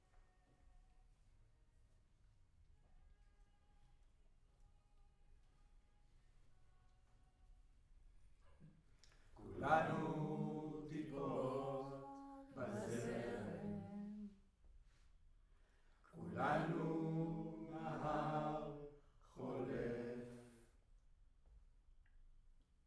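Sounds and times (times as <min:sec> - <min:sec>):
choir singing in a room: 0:09.4 - 0:14.4, 0:16.1 - 0:20.7.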